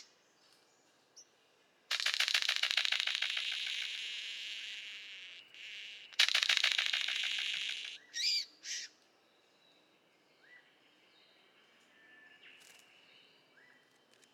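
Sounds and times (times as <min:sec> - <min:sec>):
golden bowerbird giving a loud dry buzzing rattle: 0:01.9 - 0:08.1.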